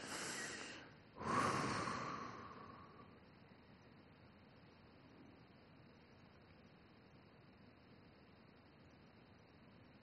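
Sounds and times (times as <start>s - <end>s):
person breathing in deeply: 0.0s - 3.2s.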